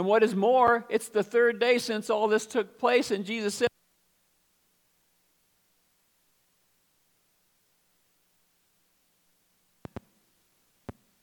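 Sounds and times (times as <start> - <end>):
speech: 0.0 - 3.8
faint static hiss on a recording: 0.0 - 11.2
sharp crackling pops on a recording: 9.8 - 10.2.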